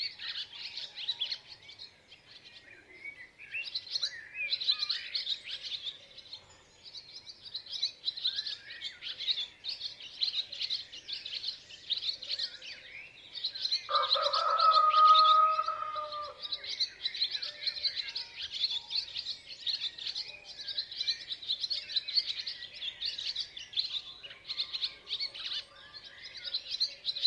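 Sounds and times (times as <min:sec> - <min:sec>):
small birds chirping and twittering: 0:00.0 - 0:27.2
rooster crowing: 0:13.9 - 0:16.6.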